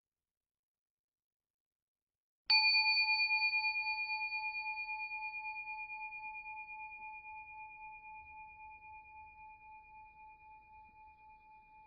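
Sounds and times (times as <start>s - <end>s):
meditation bell struck to end a meditation: 2.5s - 9.3s.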